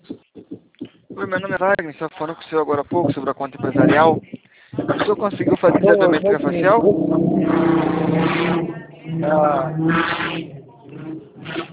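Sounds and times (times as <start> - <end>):
voices: 0.0 - 11.7
speech: 1.2 - 10.4
motorcycle engine revving and pulling away over a phone-like line: 4.8 - 11.7.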